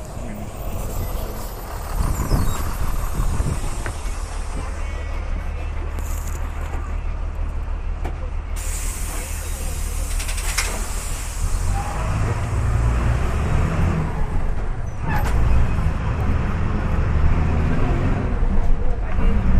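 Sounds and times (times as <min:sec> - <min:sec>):
bus engine idling at the stop: 0:00.0 - 0:19.5
street noise: 0:00.0 - 0:19.5
pneumatic hisses from bus brakes or doors: 0:08.6 - 0:11.8.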